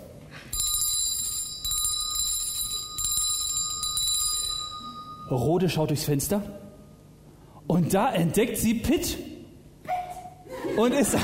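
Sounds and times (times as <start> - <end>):
bell ringing: 0.5 - 6.0
speech: 5.3 - 6.6, 7.7 - 9.3, 10.8 - 11.2
laughter: 10.4 - 11.2.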